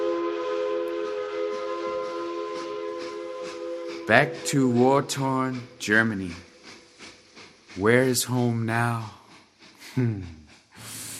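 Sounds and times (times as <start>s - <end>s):
train whistle sustained chord: 0.0s - 6.3s
speech: 4.1s - 6.5s, 7.8s - 9.2s, 10.0s - 10.4s.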